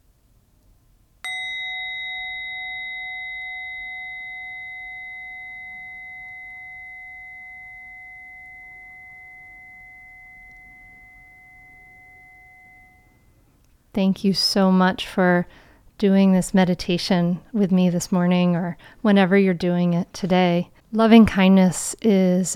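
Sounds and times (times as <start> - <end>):
meditation bell struck and ringing: 1.2 - 13.6
speech: 14.0 - 22.5.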